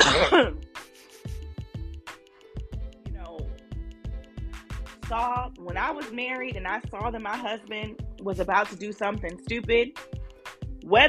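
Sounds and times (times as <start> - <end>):
harsh throat clearing: 0.0 - 0.6
speech: 5.1 - 10.1, 10.9 - 11.0.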